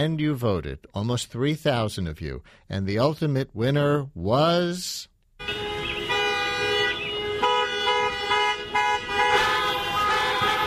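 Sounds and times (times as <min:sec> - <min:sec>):
speech: 0:00.0 - 0:05.5
car alarm going off: 0:05.4 - 0:10.6.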